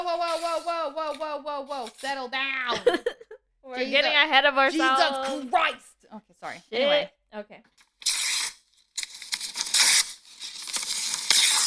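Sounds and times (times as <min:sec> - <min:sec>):
speech: 0:00.1 - 0:07.8
paper ripping: 0:08.0 - 0:11.6.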